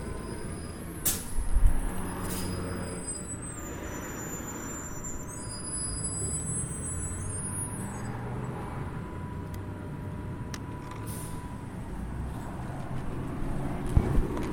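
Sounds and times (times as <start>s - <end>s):
bus air brakes hissing: 0.0s - 8.1s, 11.0s - 11.5s
bus engine rumbling pulling up at an intersection: 0.0s - 14.5s
street traffic: 0.0s - 14.5s.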